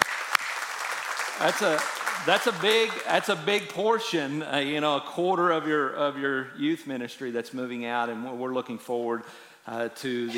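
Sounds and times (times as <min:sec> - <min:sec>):
applause for graduating seniors in a church youth ministry: 0:00.0 - 0:03.8
speech: 0:01.4 - 0:10.3.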